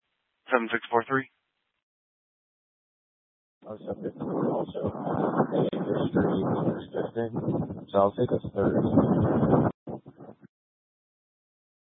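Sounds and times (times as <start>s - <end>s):
speech: 0.5s - 1.4s, 3.6s - 10.5s
strong wind buffeting the microphone: 3.6s - 10.5s.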